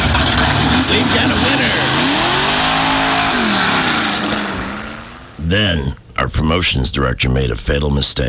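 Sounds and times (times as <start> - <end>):
car engine starting and revving: 0.0 - 5.5
speech: 5.5 - 8.2.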